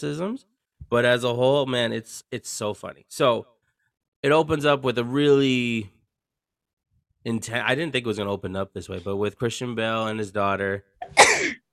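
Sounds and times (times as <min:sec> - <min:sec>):
speech: 0:00.0 - 0:03.5, 0:04.2 - 0:06.0, 0:07.2 - 0:11.4
loud sneeze: 0:11.0 - 0:11.6.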